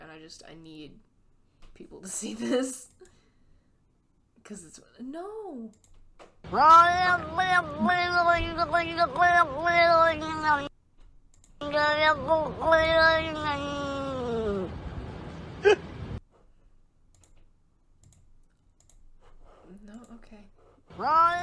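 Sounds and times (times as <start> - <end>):
speech: 0.3 - 1.1, 1.8 - 3.0, 4.4 - 5.9, 6.5 - 10.7, 11.7 - 14.0, 20.3 - 21.4
cat yowling in a played-back video: 6.5 - 10.7, 11.6 - 14.7, 21.0 - 21.4.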